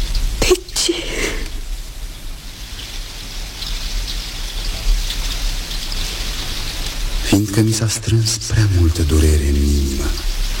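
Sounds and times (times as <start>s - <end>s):
steady rain pouring: 0.0s - 10.5s
speech: 0.5s - 1.4s, 7.3s - 10.4s.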